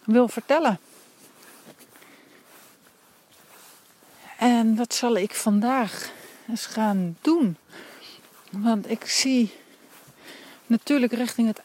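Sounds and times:
soft footsteps of people walking past: 0.0s - 11.6s
steady low hiss: 0.0s - 11.6s
speech: 0.1s - 0.9s, 4.4s - 7.9s, 8.5s - 9.6s, 10.7s - 11.6s.

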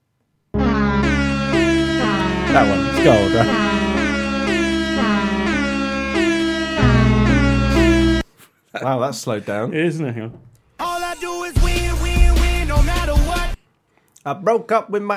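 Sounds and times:
pounding bass-heavy music track: 0.6s - 8.2s, 11.6s - 13.6s
loud brassy air horn blasts: 1.6s - 8.2s
speech: 2.6s - 3.7s, 8.8s - 10.5s, 14.2s - 15.1s.

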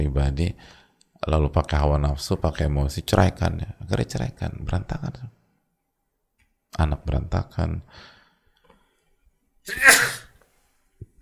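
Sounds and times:
speech: 0.0s - 5.4s, 6.7s - 8.1s, 9.6s - 10.2s
person sneezing: 9.7s - 10.4s.

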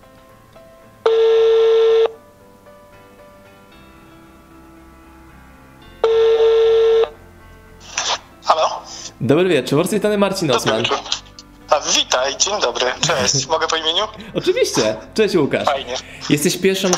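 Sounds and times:
telephone call tones from a phone line: 1.0s - 2.2s, 6.0s - 7.2s
speech: 9.2s - 16.9s
laughter: 10.5s - 11.4s, 12.8s - 15.1s.

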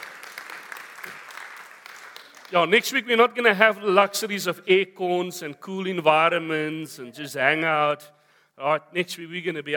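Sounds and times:
crowd clapping: 0.0s - 2.9s
speech: 2.5s - 9.7s.

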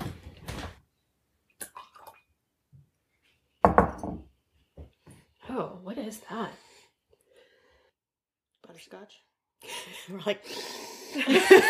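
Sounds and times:
drop of water splashing into a glass of whisky: 1.6s - 2.3s
speech: 5.6s - 6.7s, 8.8s - 11.6s
laughter: 11.2s - 11.6s.

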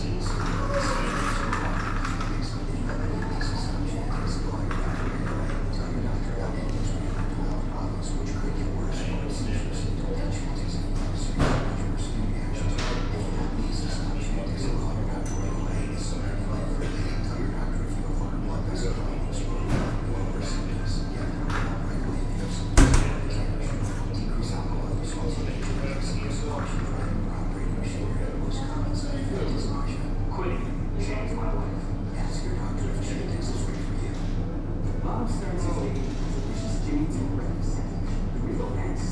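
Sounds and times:
television voices echoing off tiled laundromat floor: 0.0s - 39.0s.

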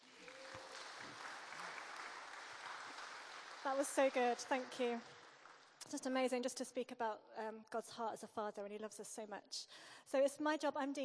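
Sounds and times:
audience applause after a prayer: 0.0s - 5.8s
speech: 3.6s - 5.2s, 5.8s - 11.0s.

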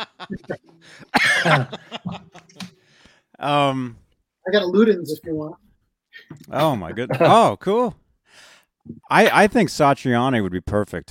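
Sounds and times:
speech: 0.0s - 1.8s, 3.4s - 5.6s, 6.5s - 8.0s, 9.1s - 11.0s
laughter: 0.0s - 2.8s, 6.6s - 7.6s
loud cough: 1.1s - 2.1s.

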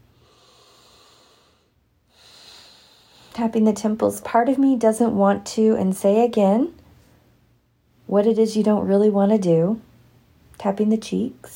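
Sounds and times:
big deep breath: 0.0s - 3.4s
low steady background: 0.0s - 11.5s
speech: 3.4s - 6.8s, 8.1s - 9.9s, 10.6s - 11.5s.

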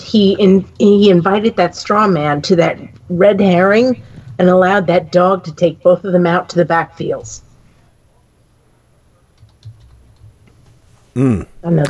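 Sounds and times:
speech: 0.1s - 7.5s, 11.2s - 11.8s
typing on a computer keyboard: 9.4s - 10.4s.

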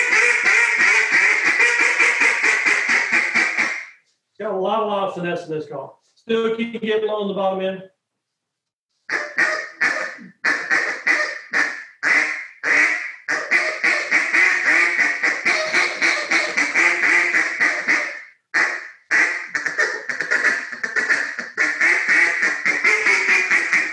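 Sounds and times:
duck call blown to imitate duck quacks: 0.0s - 4.0s, 9.1s - 23.9s
speech: 4.6s - 8.0s.

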